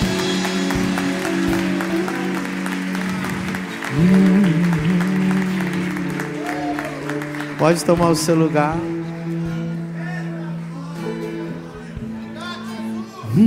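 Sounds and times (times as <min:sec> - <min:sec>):
large crowd applauding loudly: 0:00.0 - 0:10.4
speech: 0:04.0 - 0:04.6, 0:07.6 - 0:08.9.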